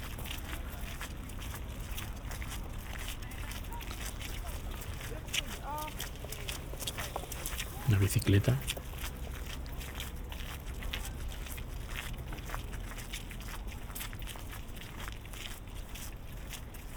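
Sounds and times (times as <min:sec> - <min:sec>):
low rumble of cars passing: 0:00.0 - 0:12.9
footsteps on small pebbles crossing a new bridge in Stockholm: 0:00.2 - 0:15.9
speech: 0:08.0 - 0:08.8.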